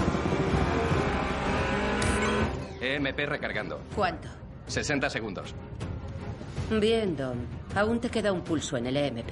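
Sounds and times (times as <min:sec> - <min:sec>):
powerful Dodge car engine accelerating through a gate: 0:00.0 - 0:02.7
speech: 0:02.9 - 0:05.8, 0:06.6 - 0:09.3.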